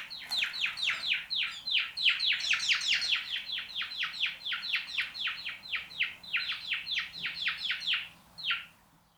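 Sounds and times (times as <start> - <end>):
House sparrow Passer domesticus chirping: 0.0 - 9.1.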